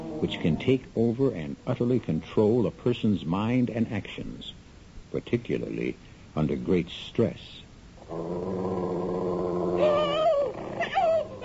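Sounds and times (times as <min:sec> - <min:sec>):
speech: 0:00.2 - 0:09.9
wolf growling and snarling while attacking: 0:08.0 - 0:11.4.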